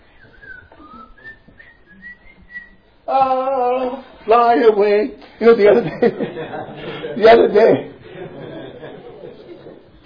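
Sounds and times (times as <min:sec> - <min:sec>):
person whistling a short melody: 0:00.1 - 0:02.8
speech: 0:03.1 - 0:07.9
laughter: 0:05.6 - 0:10.0.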